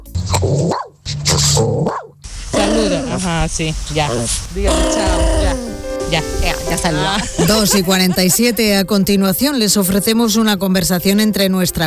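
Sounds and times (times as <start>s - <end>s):
dog snarling, growling and barking: 0.2s - 3.2s
speech: 3.2s - 5.3s, 6.1s - 11.8s
laughter: 6.9s - 9.0s.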